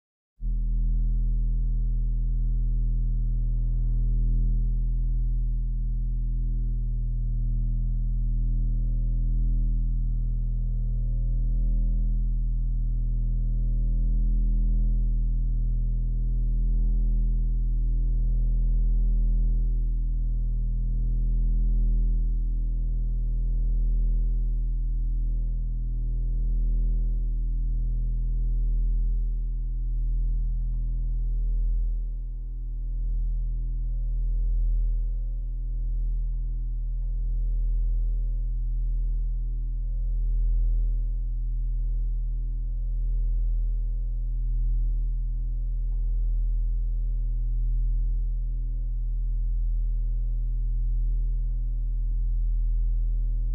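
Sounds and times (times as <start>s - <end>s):
low mains hum: 0.4s - 53.5s.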